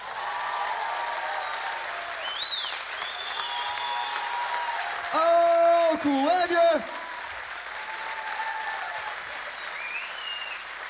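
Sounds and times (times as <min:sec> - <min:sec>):
audience clapping: 0:00.0 - 0:10.8
faint whistle: 0:02.2 - 0:04.0, 0:09.3 - 0:10.6.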